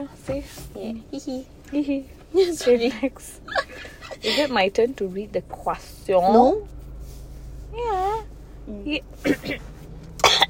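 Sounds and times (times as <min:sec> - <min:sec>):
speech: 0:00.0 - 0:06.8, 0:07.8 - 0:09.7
person coughing and clearing throat: 0:09.2 - 0:10.4.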